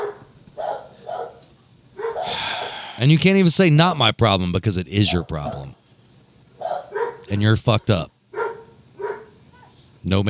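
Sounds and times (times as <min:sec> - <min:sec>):
dogs barking: 0:00.0 - 0:02.8, 0:05.0 - 0:05.8, 0:06.5 - 0:09.8
speech: 0:03.0 - 0:05.8, 0:07.3 - 0:08.1, 0:10.0 - 0:10.2.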